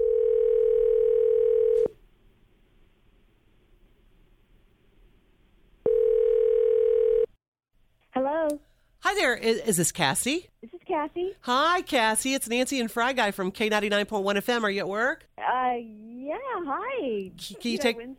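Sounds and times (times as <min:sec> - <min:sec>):
telephone dial tone: 0:00.0 - 0:01.9, 0:05.8 - 0:07.3
speech: 0:08.5 - 0:18.1.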